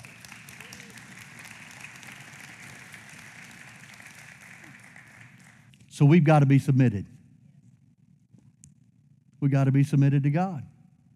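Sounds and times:
crowd applauding: 0.0s - 5.7s
speech: 6.0s - 7.1s, 9.4s - 10.7s.

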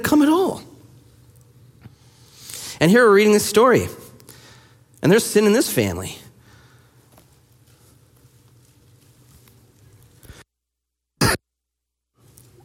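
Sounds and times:
speech: 0.0s - 0.7s, 2.8s - 4.0s, 5.0s - 6.2s
low steady hum: 0.0s - 10.4s
person with a lingering cough coughing: 11.2s - 11.4s.

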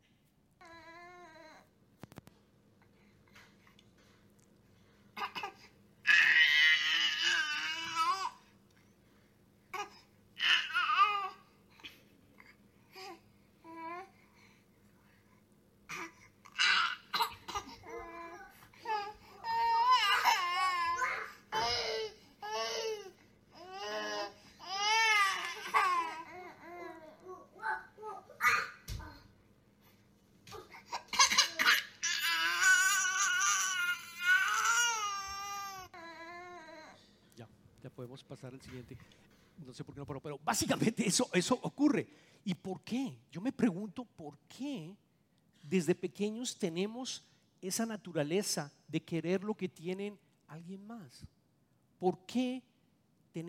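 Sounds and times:
faint steady hum: 0.0s - 53.4s
two babies crying and babbling: 9.8s - 11.4s, 15.9s - 29.3s, 30.5s - 37.0s
speech: 38.1s - 45.0s, 45.6s - 51.4s, 52.0s - 52.7s.

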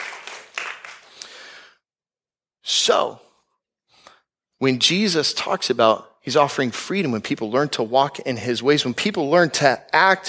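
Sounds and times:
audience clapping: 0.0s - 1.5s
speech: 2.9s - 3.3s, 4.6s - 10.2s.

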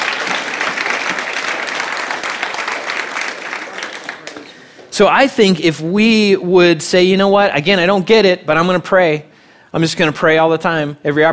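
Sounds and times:
church audience applauding: 0.0s - 4.9s
speech: 5.0s - 11.3s.

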